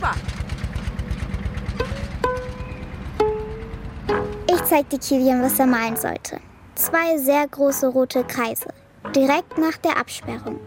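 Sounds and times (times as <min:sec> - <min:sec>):
tractor engine chugging: 0:00.0 - 0:05.0
speech: 0:04.7 - 0:10.6.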